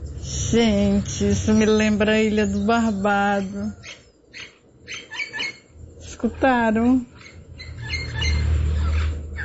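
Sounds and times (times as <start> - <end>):
steady low outdoor rumble: 0.0 - 9.4
speech: 0.5 - 4.0, 6.2 - 7.1
wild parrot squawking: 3.3 - 5.7, 7.1 - 9.4.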